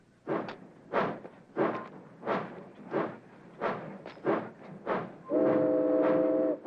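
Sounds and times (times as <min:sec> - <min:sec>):
steam freight train chugging away: 0:00.2 - 0:06.6
steam freight train whistle blowing: 0:05.3 - 0:06.6.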